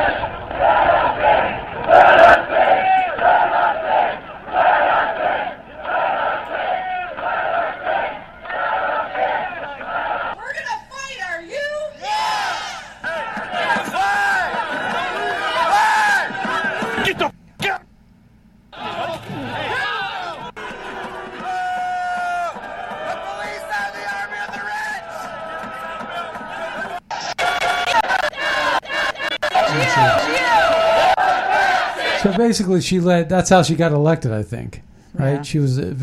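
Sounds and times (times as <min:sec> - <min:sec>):
large protest crowd chanting a slogan in unison: 0:00.0 - 0:10.4, 0:12.0 - 0:17.3, 0:18.8 - 0:32.4
speech: 0:32.5 - 0:36.0.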